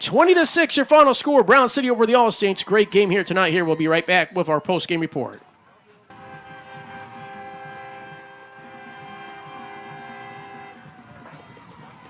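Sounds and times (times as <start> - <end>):
speech: 0.0 - 5.5
busy outdoor crowd din at a stadium: 0.0 - 12.0
band playing outdoors at a stadium: 6.1 - 12.0
loud sustained siren tone at a stadium celebration: 6.1 - 12.0.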